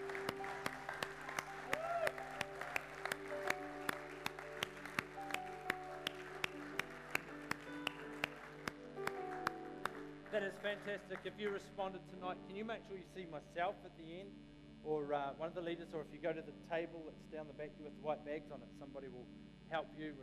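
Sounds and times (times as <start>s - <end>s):
crowd clapping in unison: 0.0s - 11.7s
sustained musical tones: 0.0s - 20.2s
speech: 10.4s - 20.2s.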